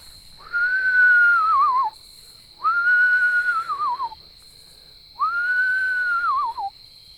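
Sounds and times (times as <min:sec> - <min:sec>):
person whistling an imitation of an owl call to call owls: 0:00.4 - 0:02.0, 0:02.6 - 0:04.2, 0:05.2 - 0:06.8.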